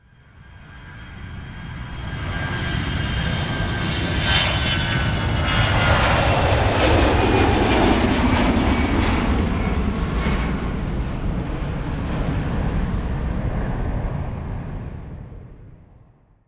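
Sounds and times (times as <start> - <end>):
small single-engine Skyhawk airplane engine at reduced RPM: 0.0 - 16.4.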